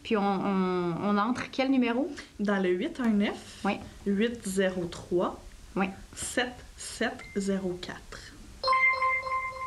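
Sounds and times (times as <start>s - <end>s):
speech: 0.1s - 8.3s
phone text message notification chime: 8.6s - 9.6s.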